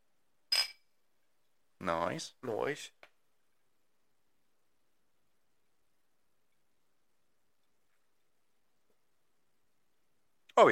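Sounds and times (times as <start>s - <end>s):
glasses clinking in a toast: 0.5s - 0.8s
speech: 1.8s - 3.0s, 10.6s - 10.7s.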